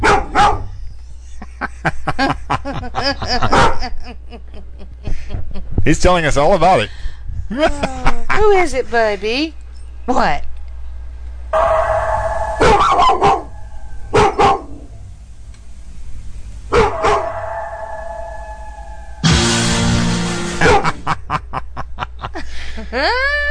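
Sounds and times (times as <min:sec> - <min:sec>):
dog barking and growling: 0:00.0 - 0:00.8, 0:03.4 - 0:03.9, 0:11.6 - 0:14.9, 0:16.7 - 0:19.8, 0:20.4 - 0:21.1
laughter: 0:01.3 - 0:05.7, 0:07.5 - 0:08.4, 0:20.6 - 0:23.4
speech: 0:02.1 - 0:05.2, 0:05.8 - 0:10.5.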